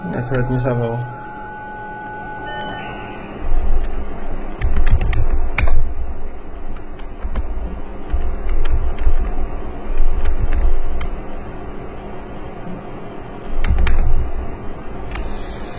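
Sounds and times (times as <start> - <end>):
speech: 0.0 - 1.2
low hum: 0.0 - 15.7
rapid keyboard typing in an indoor office: 3.5 - 5.8, 6.7 - 11.2, 13.4 - 14.2.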